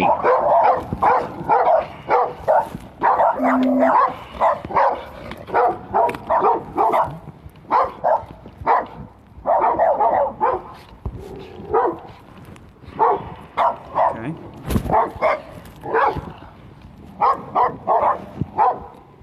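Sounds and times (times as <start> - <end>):
two dogs barking and yipping while running at a man: 0.0 - 14.2, 14.8 - 16.5, 17.1 - 19.0
person speaking: 3.4 - 4.0.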